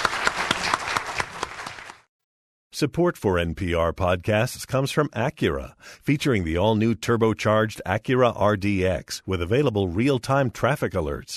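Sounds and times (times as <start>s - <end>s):
audience clapping for speakers at an evening event: 0.0s - 2.1s
speech: 2.8s - 11.3s.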